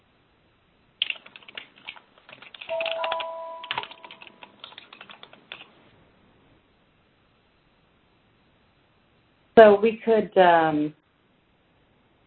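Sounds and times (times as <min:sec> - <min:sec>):
several people typing on computer keyboards: 0:01.0 - 0:05.8
brief higher tone: 0:02.7 - 0:04.2
speech: 0:09.6 - 0:11.0.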